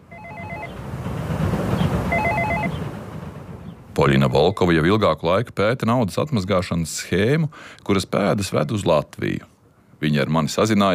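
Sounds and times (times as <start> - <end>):
apartment building intercom warbling electronic ring tone at a multi-storey block in Riga: 0.0 - 0.8, 2.0 - 2.8
speech: 4.0 - 10.9.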